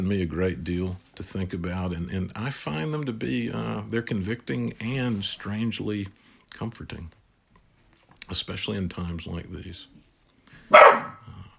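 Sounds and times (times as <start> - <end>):
speech: 0.0 - 7.2, 8.3 - 9.9, 10.7 - 11.0
dog barking: 10.7 - 11.2.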